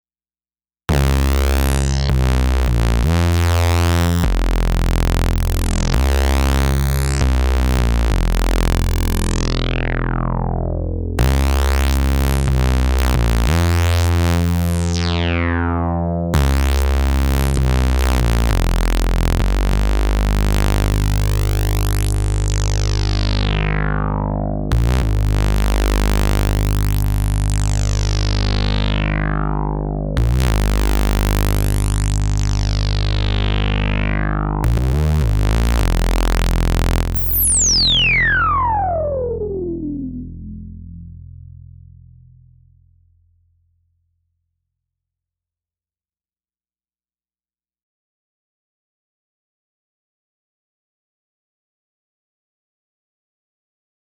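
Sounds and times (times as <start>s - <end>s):
blown out dry synthesizer signal: 0.9s - 42.1s.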